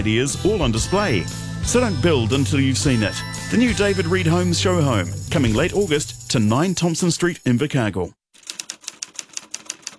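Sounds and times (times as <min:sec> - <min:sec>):
speech: 0:00.0 - 0:08.2
old typewriter keystrokes: 0:08.4 - 0:09.9.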